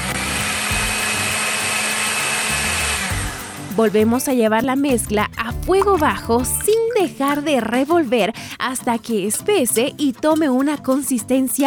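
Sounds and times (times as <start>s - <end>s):
blender whirring as it mixes honey, vanilla, cinnamon, turmeric, cornstarch and salt: 0.0s - 3.8s
speech: 3.8s - 11.6s.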